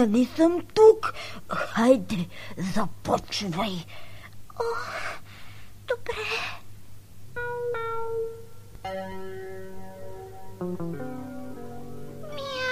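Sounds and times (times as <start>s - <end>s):
speech: 0.0s - 5.2s, 5.9s - 6.6s
steady low hum: 0.0s - 12.7s
kitten meowing: 12.2s - 12.7s.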